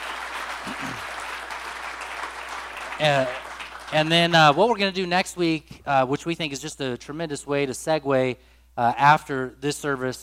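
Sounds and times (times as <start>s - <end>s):
audience applauding volunteers: 0.0s - 4.8s
speech: 3.0s - 10.2s.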